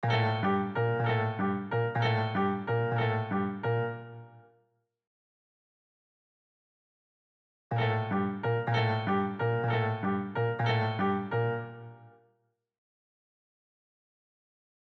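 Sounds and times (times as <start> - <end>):
piano break: 0.0 - 4.2, 7.7 - 12.0.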